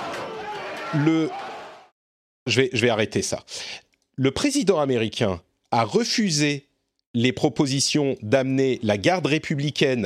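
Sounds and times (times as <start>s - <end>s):
agitated crowd clamoring while forcing parliament doors in Washington: 0.0s - 1.9s
loud shout: 0.0s - 1.9s
speech: 0.9s - 1.4s, 2.4s - 10.0s.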